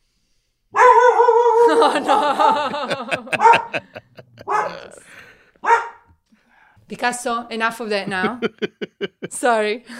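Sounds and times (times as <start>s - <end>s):
dog barking: 0.8s - 1.7s, 3.3s - 3.8s, 4.4s - 4.8s, 5.6s - 6.1s
laughter: 1.6s - 5.3s, 8.0s - 9.5s
speech: 1.8s - 4.0s, 6.9s - 9.9s.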